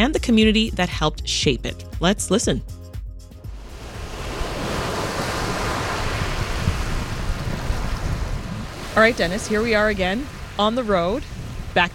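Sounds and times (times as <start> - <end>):
speech: 0.0 - 2.8, 9.0 - 11.9
waves washing ashore at a beach: 3.5 - 11.9.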